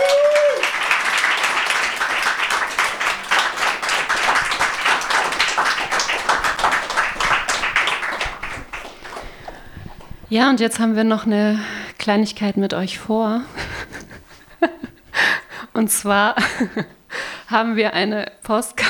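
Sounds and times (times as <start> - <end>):
audience applause: 0.0 - 10.2
speech: 10.3 - 13.6, 15.8 - 18.8.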